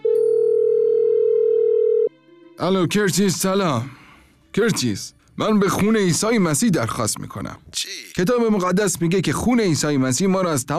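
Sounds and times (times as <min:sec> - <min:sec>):
telephone dial tone while a call is placed: 0:00.0 - 0:02.1
speech: 0:02.6 - 0:10.7.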